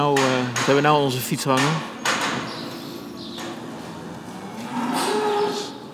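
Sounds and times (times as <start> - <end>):
speech: 0.0 - 2.0
dairy cows mooing inside a barn: 3.6 - 5.9.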